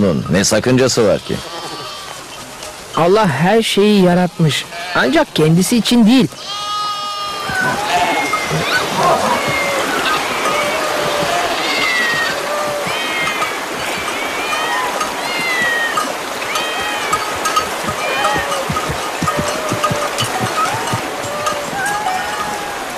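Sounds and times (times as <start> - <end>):
speech: 0.0 - 1.8, 3.0 - 6.6
many cats meowing in a chorus: 6.4 - 22.9.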